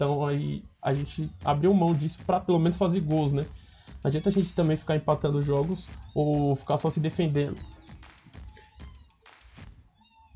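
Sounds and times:
speech: 0:00.0 - 0:07.8
cat meowing: 0:06.0 - 0:06.7, 0:07.5 - 0:09.2, 0:09.9 - 0:10.3.

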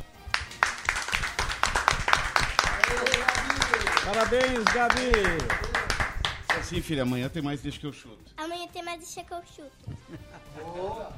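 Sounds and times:
small group applauding with hand claps: 0:00.0 - 0:07.0
speech: 0:04.1 - 0:05.7, 0:06.6 - 0:11.1.

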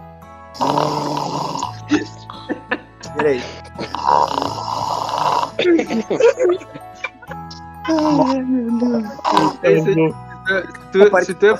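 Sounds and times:
speech: 0:00.6 - 0:00.9, 0:03.2 - 0:04.2, 0:05.6 - 0:06.8, 0:07.9 - 0:11.5
person imitating rasping snoring by voice: 0:00.6 - 0:02.1, 0:03.8 - 0:05.6, 0:07.9 - 0:09.9
laughter: 0:01.7 - 0:04.0, 0:05.5 - 0:08.4, 0:09.4 - 0:10.9.

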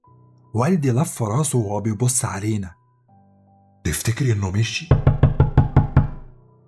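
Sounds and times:
speech: 0:00.5 - 0:02.8, 0:03.9 - 0:05.2
loud heavy banging on a door: 0:04.9 - 0:06.4.

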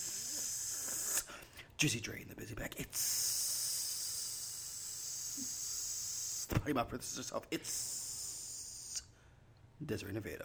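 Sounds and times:
person hissing like a snake: 0:00.0 - 0:01.3, 0:02.9 - 0:06.5, 0:07.6 - 0:09.1
speech: 0:01.8 - 0:03.4, 0:06.6 - 0:07.9, 0:09.8 - 0:10.4.

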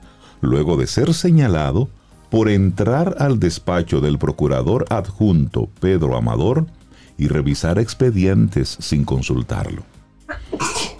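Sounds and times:
speech: 0:00.4 - 0:10.7
person sneezing: 0:10.3 - 0:10.9.

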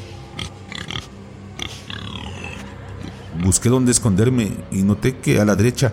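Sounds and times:
pig squealing and grunting: 0:00.3 - 0:03.7
speech: 0:03.4 - 0:05.9.

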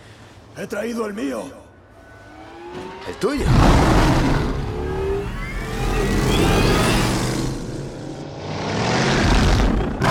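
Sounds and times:
speech: 0:00.6 - 0:01.6, 0:02.7 - 0:04.4
car engine revving hard through its gears during a chase: 0:02.0 - 0:10.0.

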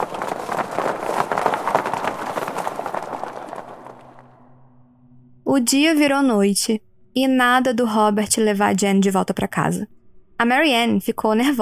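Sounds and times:
horse hooves clip-clopping on a ride: 0:00.0 - 0:04.3
speech: 0:05.5 - 0:11.6.

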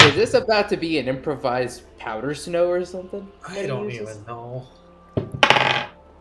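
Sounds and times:
speech: 0:00.2 - 0:04.8
dice clattering onto a hard surface: 0:05.2 - 0:06.0.

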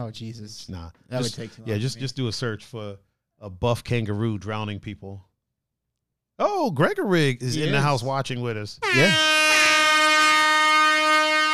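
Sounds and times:
speech: 0:00.0 - 0:05.3, 0:06.4 - 0:09.4
loud sustained air horn blast: 0:08.8 - 0:11.5.

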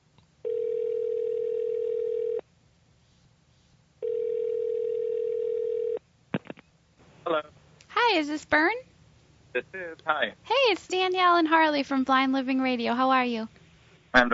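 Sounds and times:
long steady telephone tones: 0:00.4 - 0:02.4, 0:04.0 - 0:06.0
speech: 0:07.3 - 0:08.9, 0:09.5 - 0:14.3.

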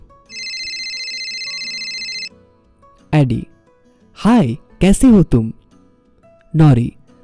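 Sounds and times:
faint music: 0:00.0 - 0:07.2
electronic phone ring of an outgoing call: 0:00.3 - 0:02.3
speech: 0:03.1 - 0:03.5, 0:04.2 - 0:05.6, 0:06.5 - 0:07.0.

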